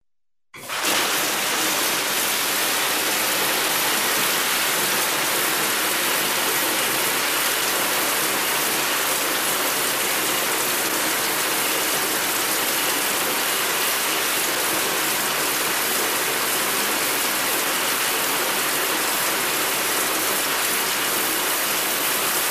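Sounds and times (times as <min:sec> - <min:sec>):
water running in a shower: 0:00.6 - 0:22.4.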